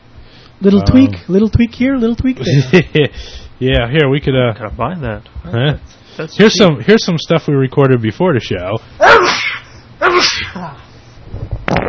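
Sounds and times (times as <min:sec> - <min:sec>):
speech: 0:00.6 - 0:09.6, 0:10.2 - 0:11.8
person sneezing: 0:09.0 - 0:10.9.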